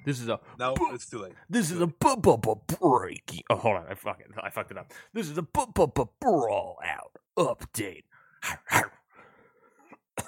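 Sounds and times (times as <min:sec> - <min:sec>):
speech: 0:00.0 - 0:08.9
person imitating a barking dog: 0:08.4 - 0:09.0.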